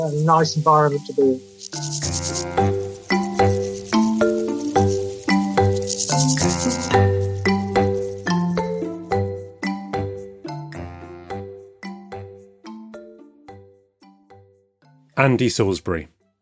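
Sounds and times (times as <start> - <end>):
speech: 0.0 - 2.7, 15.2 - 16.2
crickets and grasshoppers chirping: 0.0 - 10.7
ringing bell-like tones: 1.7 - 10.6.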